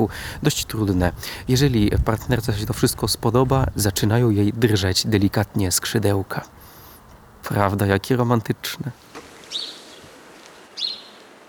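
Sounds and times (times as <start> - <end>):
speech: 0.0 - 6.7, 7.5 - 9.7
bird contact calls: 9.0 - 11.4.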